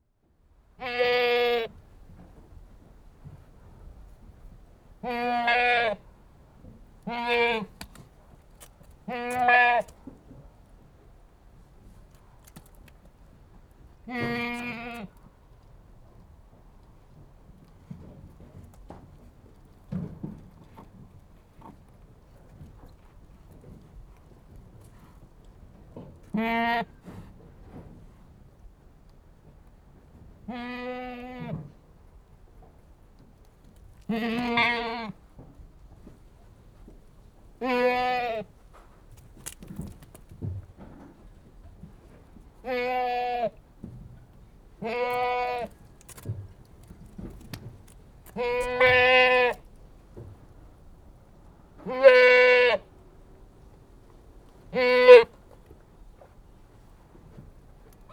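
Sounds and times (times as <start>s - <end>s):
Anglo-Nubian goat bleating: 0.8s - 1.6s, 5.0s - 6.0s, 7.1s - 7.7s, 9.1s - 9.9s, 14.1s - 15.1s, 26.4s - 26.9s, 34.1s - 35.1s, 37.6s - 38.4s, 42.6s - 43.5s, 44.8s - 45.7s, 48.4s - 49.6s, 51.8s - 52.8s, 54.8s - 55.3s.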